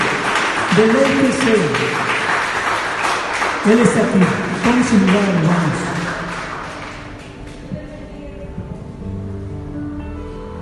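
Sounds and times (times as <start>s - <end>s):
crowd clapping: 0.0s - 7.7s
speech: 0.8s - 2.1s, 3.6s - 5.9s.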